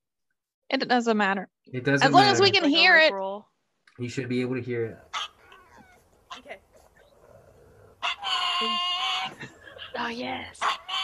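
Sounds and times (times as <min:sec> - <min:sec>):
speech: 0:00.7 - 0:05.1, 0:10.0 - 0:10.8
pug yipping: 0:05.1 - 0:07.1, 0:08.0 - 0:09.4, 0:10.6 - 0:11.0.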